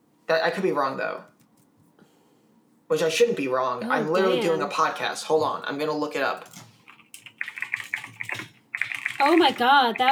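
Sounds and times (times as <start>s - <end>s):
speech: 0.3s - 1.3s, 2.9s - 6.7s, 9.2s - 10.1s
typing on a loud computer keyboard: 6.4s - 10.1s.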